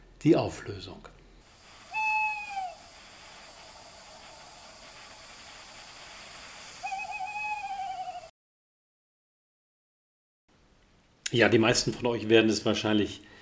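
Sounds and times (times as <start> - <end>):
steady hiss: 0.0 - 8.3, 10.5 - 13.4
speech: 0.2 - 1.2, 11.3 - 13.3
male tawny owl hooting: 1.5 - 8.3.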